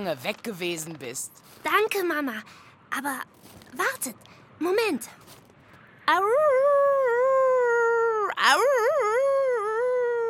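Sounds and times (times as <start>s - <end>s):
speech: 0.0s - 5.4s, 6.1s - 6.9s, 8.4s - 9.2s
voice imitating a husky's howl: 6.2s - 10.2s.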